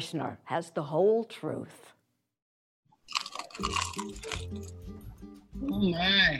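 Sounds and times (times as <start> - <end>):
speech: 0.0 - 2.0, 3.6 - 6.3
crackling chewing of crusty bagel: 3.0 - 4.9
crusty bagel bitten with a loud crunch: 3.1 - 4.9.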